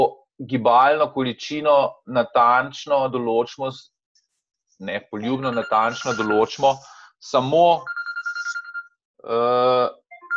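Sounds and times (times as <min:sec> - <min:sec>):
speech: 0:00.0 - 0:03.9, 0:04.8 - 0:08.0, 0:09.2 - 0:10.0
phone ringtone chirping: 0:05.2 - 0:06.8, 0:07.8 - 0:08.9, 0:10.1 - 0:10.3.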